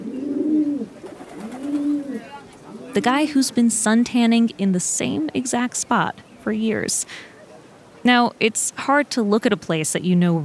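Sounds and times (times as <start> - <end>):
pigeons cooing in a park in New York City: 0.0 - 3.4
speech: 3.0 - 7.3, 8.0 - 10.4.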